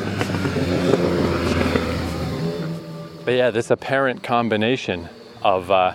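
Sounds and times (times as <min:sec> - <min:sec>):
full-size motorcycle passing by: 0:00.0 - 0:03.6
speech: 0:03.3 - 0:05.9.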